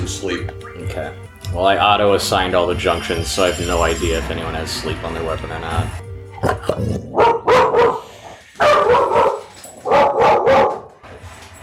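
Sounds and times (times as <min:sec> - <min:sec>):
speech: 0:00.1 - 0:07.9
dog barking at people: 0:07.1 - 0:11.0.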